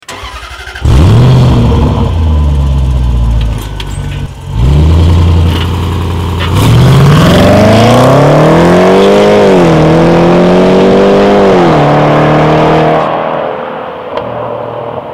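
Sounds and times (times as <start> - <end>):
Range Rover Sport engine: 0.0 - 15.1.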